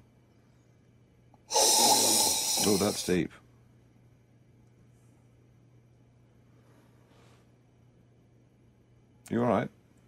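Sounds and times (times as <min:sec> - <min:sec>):
low room hum: 0:00.0 - 0:10.0
person sniffing a glass of dark red wine: 0:01.5 - 0:03.1
speech: 0:02.6 - 0:03.4, 0:09.3 - 0:09.8.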